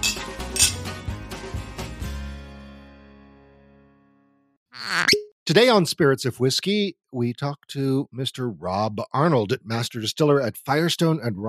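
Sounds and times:
glasses clinking in a toast: 0:00.0 - 0:00.8
speech: 0:05.5 - 0:11.4.

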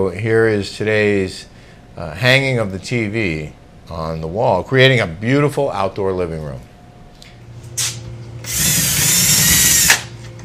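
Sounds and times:
speech: 0:00.0 - 0:06.7
power drill drilling holes in a wall for wall anchors: 0:08.4 - 0:10.1.

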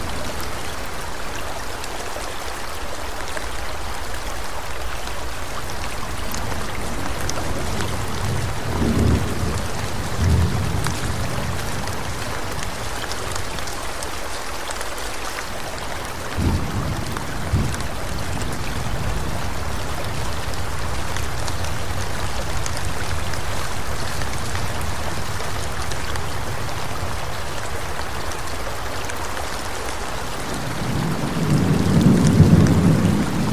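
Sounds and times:
rain falling in a forest: 0:00.0 - 0:33.5
thunder rumbling: 0:05.9 - 0:13.6, 0:16.4 - 0:27.2, 0:30.4 - 0:33.5.

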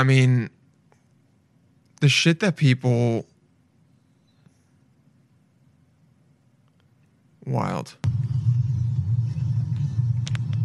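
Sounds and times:
speech: 0:00.0 - 0:00.6, 0:02.0 - 0:03.3, 0:07.5 - 0:08.0
car engine rumble inside a moving car: 0:08.0 - 0:10.6.

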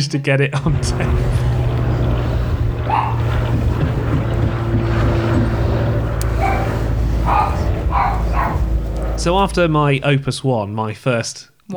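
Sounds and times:
speech: 0:00.0 - 0:01.5, 0:09.2 - 0:11.7
wind buffeting the microphone: 0:00.6 - 0:10.2
loud steady droning rumble of an aircraft passing overhead: 0:00.6 - 0:10.5
dog barking at a plane overhead: 0:02.8 - 0:03.9, 0:06.3 - 0:09.0.

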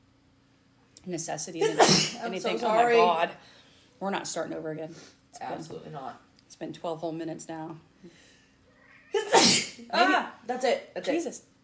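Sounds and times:
speech: 0:01.0 - 0:08.2, 0:09.5 - 0:11.5
woman sneezing: 0:01.6 - 0:02.3, 0:09.1 - 0:10.1.

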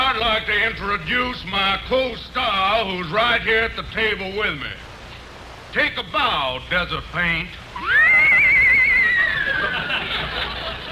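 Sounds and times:
speech: 0:00.2 - 0:04.9, 0:05.7 - 0:08.6
horse whinnying: 0:07.8 - 0:09.9
laughter: 0:07.8 - 0:10.9.

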